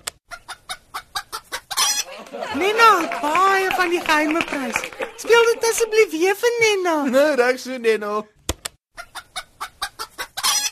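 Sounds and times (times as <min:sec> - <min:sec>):
hen clucking after laying an egg: 0:00.3 - 0:02.1, 0:09.0 - 0:10.7
laughter: 0:02.0 - 0:06.3
speech: 0:02.4 - 0:08.4.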